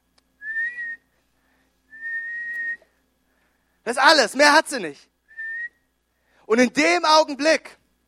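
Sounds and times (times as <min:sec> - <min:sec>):
small life jacket whistle blasts: 0:00.4 - 0:01.1, 0:01.9 - 0:02.9, 0:05.3 - 0:05.9
speech: 0:03.9 - 0:05.1, 0:06.5 - 0:07.8.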